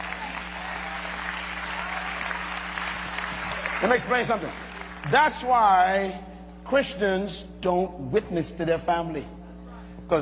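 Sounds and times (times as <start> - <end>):
congregation clapping hands in applause: 0.0 - 5.9
speech: 3.8 - 9.4.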